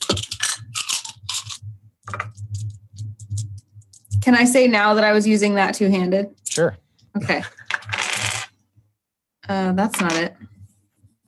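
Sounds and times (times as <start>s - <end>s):
low steady hum: 0.0s - 11.2s
speech: 4.2s - 7.6s, 9.5s - 10.5s
damage dice rolling across a hard tabletop during a game: 7.5s - 8.6s, 9.9s - 10.4s.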